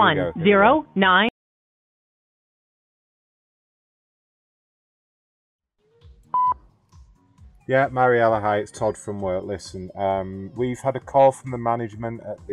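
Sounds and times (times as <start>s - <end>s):
speech: 0.0s - 1.3s, 7.7s - 12.5s
telephone keypad tone: 6.4s - 6.6s.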